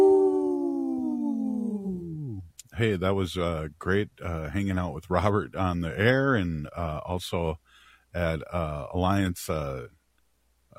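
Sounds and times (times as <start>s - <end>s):
wolf howling: 0.0s - 2.4s
speech: 2.8s - 10.0s.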